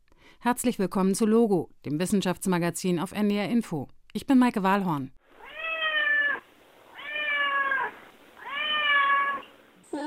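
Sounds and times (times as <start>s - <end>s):
speech: 0.4s - 5.2s
cheetah meowing: 5.4s - 9.6s.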